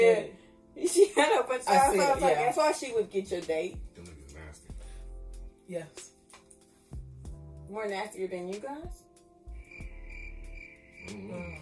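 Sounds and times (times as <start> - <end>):
speech: 0.0 - 4.1, 5.7 - 6.1, 7.7 - 9.0
crickets chirping sound effect: 9.5 - 11.6.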